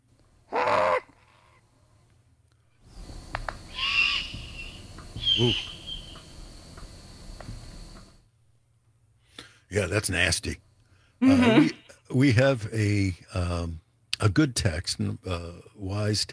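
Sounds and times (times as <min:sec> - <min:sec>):
juvenile great horned owl giving hissing screech calls: 0:00.5 - 0:01.6, 0:03.7 - 0:06.4
insect-like chirring: 0:02.9 - 0:08.2
speech: 0:05.4 - 0:05.7, 0:09.8 - 0:10.6, 0:11.2 - 0:16.3.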